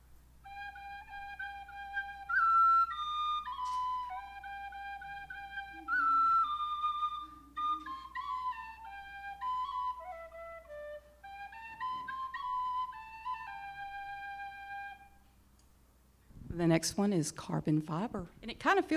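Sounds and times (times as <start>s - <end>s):
handheld aluminum whistle call imitating a bird with warbling notes: 0.5s - 15.2s
speech: 16.6s - 18.9s.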